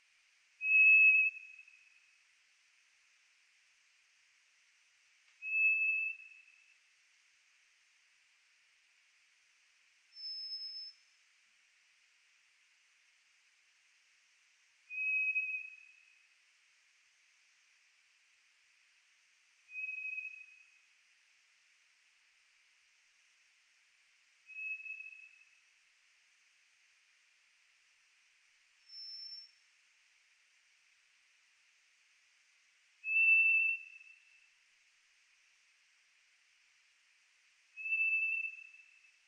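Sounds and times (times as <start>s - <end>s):
White's thrush calling: 0.6s - 1.9s, 5.4s - 6.6s, 14.9s - 16.2s, 19.7s - 20.8s, 24.5s - 25.5s, 28.9s - 29.6s, 33.0s - 34.4s, 37.8s - 39.1s.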